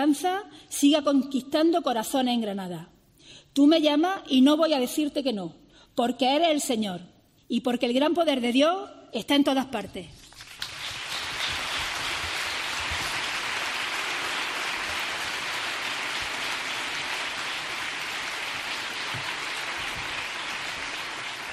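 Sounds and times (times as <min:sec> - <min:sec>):
speech: 0:00.0 - 0:10.2
steady rain pattering on surfaces: 0:10.4 - 0:21.5.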